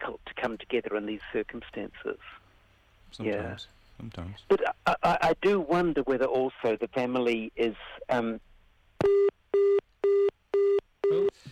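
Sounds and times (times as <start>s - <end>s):
speech: 0.4s - 2.4s, 3.1s - 9.2s
telephone busy tone after a dropped call: 9.0s - 11.5s.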